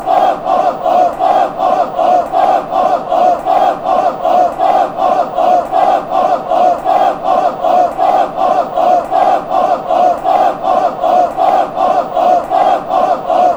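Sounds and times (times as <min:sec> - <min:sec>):
chanting: 0:00.0 - 0:13.5.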